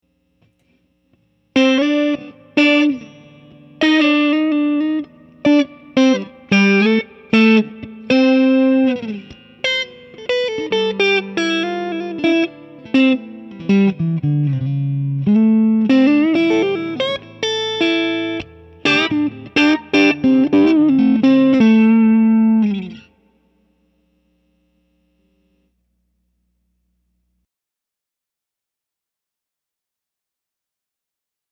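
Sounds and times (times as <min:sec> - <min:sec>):
clean blues guitars: 0:01.5 - 0:23.5.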